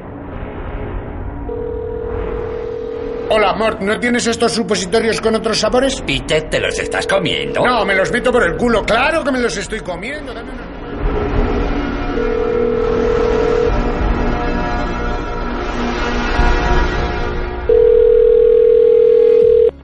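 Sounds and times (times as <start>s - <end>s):
constant rumbling noise: 0.0s - 18.7s
telephone ringing with two electronic tones: 1.5s - 3.3s, 6.7s - 8.6s, 12.2s - 13.8s, 17.7s - 19.8s
speech: 3.3s - 10.8s.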